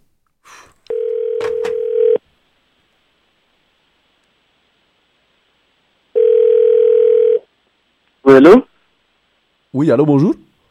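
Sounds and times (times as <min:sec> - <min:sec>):
telephone ringback tone during outgoing call: 0:00.9 - 0:02.2, 0:06.2 - 0:07.4
speech: 0:08.4 - 0:08.7, 0:09.8 - 0:10.4.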